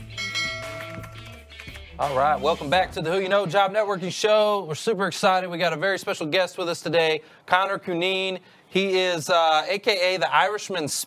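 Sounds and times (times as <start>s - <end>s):
bell ringing: 0.0s - 1.5s
speech: 2.0s - 11.0s.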